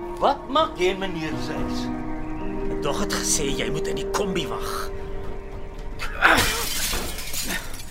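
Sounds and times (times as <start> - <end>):
speech: 0.2 - 2.0, 2.8 - 5.0
glass shattering: 6.3 - 7.8
glass shards and debris tinkling: 6.4 - 7.8.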